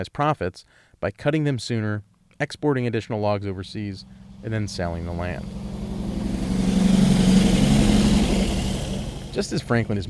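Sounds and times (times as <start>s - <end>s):
speech: 0.0s - 5.7s, 9.4s - 10.0s
heavy vehicle engine rumbling: 3.6s - 10.0s.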